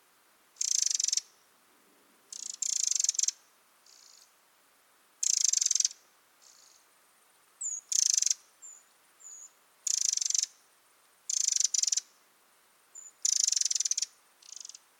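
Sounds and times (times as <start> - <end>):
Eurasian wren Troglodytes troglodytes calling with harsh rattles: 0.6 - 1.3, 2.3 - 4.3, 5.2 - 6.8, 7.6 - 10.5, 11.3 - 12.0, 13.0 - 14.8.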